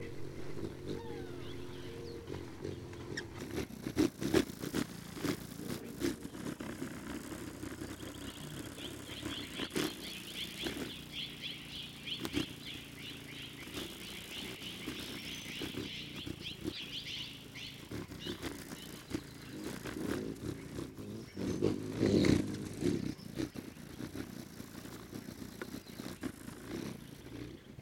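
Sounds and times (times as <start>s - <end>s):
hummingbirds in Madera Canyon: 0.0s - 27.7s.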